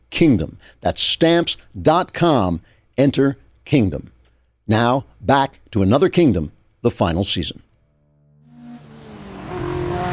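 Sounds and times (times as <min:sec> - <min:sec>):
speech: 0:00.2 - 0:07.6
Mercedes car engine roaring as it accelerates through the darkness: 0:08.4 - 0:10.1.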